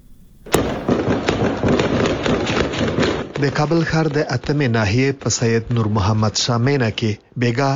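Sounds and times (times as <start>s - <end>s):
gunfire during a military operation against a hideout in Kabul: 0.5s - 5.8s
speech: 3.4s - 7.7s.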